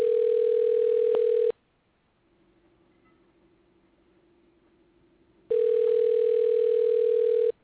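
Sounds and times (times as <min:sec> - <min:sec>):
electronic ringback tone of an unanswered outgoing phone call: 0:00.0 - 0:01.5, 0:05.5 - 0:07.6.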